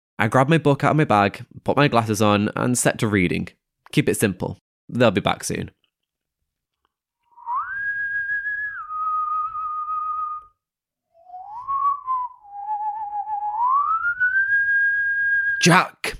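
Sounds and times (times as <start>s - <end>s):
speech: 0.2s - 5.8s, 15.6s - 16.1s
person whistling a sliding tune: 7.3s - 10.6s, 11.2s - 15.6s.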